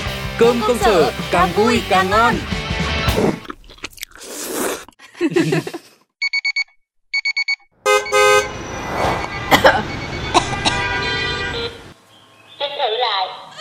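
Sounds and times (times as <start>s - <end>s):
busy street noise: 0.1s - 3.4s, 7.8s - 13.5s
speech: 0.4s - 3.4s
rapid alarm clock beeping: 6.2s - 8.4s, 9.1s - 10.4s
loud blaring car horn honks: 7.8s - 11.9s.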